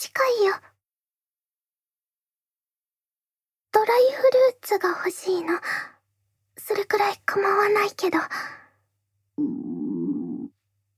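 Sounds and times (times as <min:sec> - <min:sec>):
speech: 0:00.0 - 0:00.7, 0:03.8 - 0:05.9, 0:06.6 - 0:08.6
stomach rumbling: 0:09.4 - 0:10.5.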